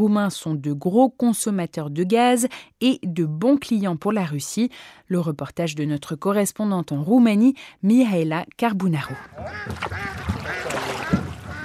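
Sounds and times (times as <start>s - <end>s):
speech: 0.0s - 10.3s
ducks quacking in Danube delta wetland in Romania: 9.1s - 11.6s
geese honking in Danube delta wetland in Romania: 9.1s - 11.6s.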